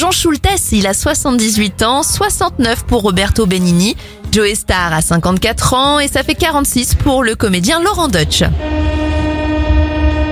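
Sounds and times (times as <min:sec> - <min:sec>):
speech: 0:00.0 - 0:09.0
New York subway train rumbling past: 0:07.9 - 0:10.2
New York subway train horn blaring: 0:08.2 - 0:10.2.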